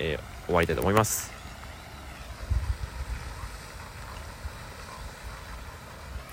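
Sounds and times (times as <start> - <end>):
speech: 0.0 - 1.4
water spraying from a jet into a pond: 0.0 - 6.3
low rumbling gusts: 2.2 - 6.3.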